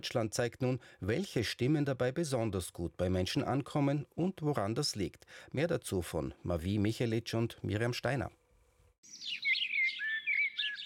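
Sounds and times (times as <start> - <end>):
speech: 0.0 - 8.4
soft hiss: 0.0 - 9.0
bird singing warbling chirps and whistled trills: 9.0 - 10.8.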